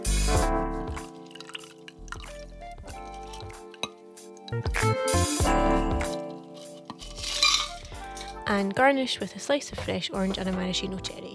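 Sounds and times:
cocktail poured into ice-filled rocks glass: 0.1s - 4.6s, 5.6s - 8.4s
ice cubes clinking in a glass: 0.9s - 4.6s, 5.6s - 8.5s
speech: 8.5s - 11.3s.

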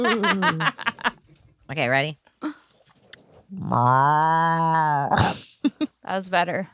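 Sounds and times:
speech: 0.0s - 0.9s, 1.7s - 2.6s, 3.5s - 6.7s
person imitating a cow's moo: 3.5s - 5.2s.

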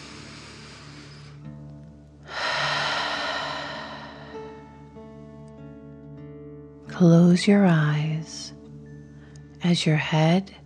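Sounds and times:
slow deep breath in and out during a guided bedtime relaxation: 0.0s - 1.6s, 2.2s - 4.9s
speech: 7.0s - 8.5s, 9.6s - 10.6s.

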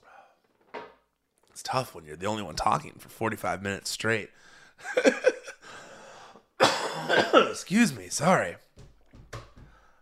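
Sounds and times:
speech: 1.6s - 5.4s, 7.1s - 8.6s
person coughing: 6.6s - 7.7s.

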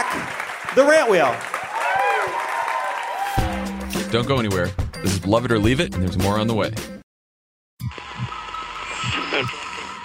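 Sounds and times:
live audience cheering and whooping: 0.0s - 0.6s, 1.5s - 3.8s
live audience applause: 0.0s - 3.7s
speech: 0.7s - 1.5s, 4.1s - 6.9s, 9.4s - 9.6s.

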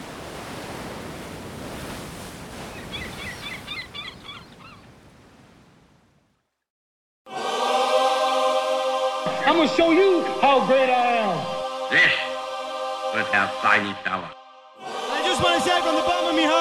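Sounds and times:
steady rushing wash of ocean surf: 0.0s - 3.8s, 7.3s - 16.5s
honking bird calls: 2.8s - 4.9s
speech: 9.6s - 12.1s, 13.3s - 14.4s, 15.6s - 16.5s.

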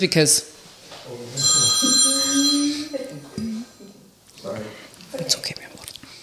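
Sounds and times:
speech: 0.0s - 0.5s
mobile phone ringing with an electronic ringtone: 1.4s - 3.1s.

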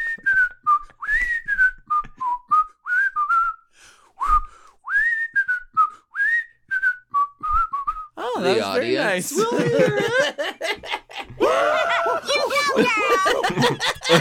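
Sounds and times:
person whistling a lively tune: 0.0s - 8.2s
laughter: 8.2s - 14.2s
speech: 8.4s - 10.5s, 12.8s - 14.2s.

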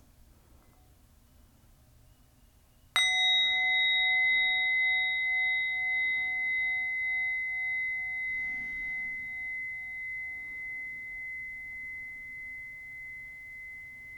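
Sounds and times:
meditation bell ringing: 3.0s - 14.1s.

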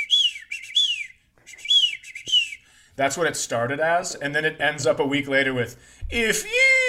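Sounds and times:
person whistling an imitation of a bird's chirp: 0.0s - 2.8s
speech: 3.0s - 6.8s.

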